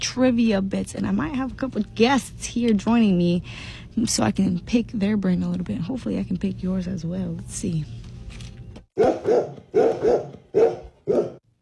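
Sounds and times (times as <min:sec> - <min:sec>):
speech: 0:00.2 - 0:08.0, 0:09.0 - 0:11.4
golden retriever dogs barking: 0:09.0 - 0:11.4.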